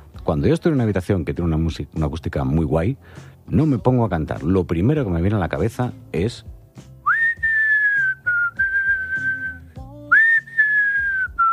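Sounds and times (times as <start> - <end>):
faint low accompaniment: 0.0 - 11.5
speech: 0.3 - 6.9
person whistling a slow sustained melody: 7.0 - 11.5.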